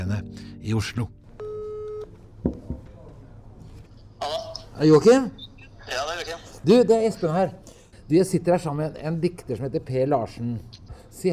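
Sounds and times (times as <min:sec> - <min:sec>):
speech: 0:00.0 - 0:01.2, 0:04.8 - 0:11.3
electronic telephone ringing tone of an outgoing call: 0:01.4 - 0:02.1.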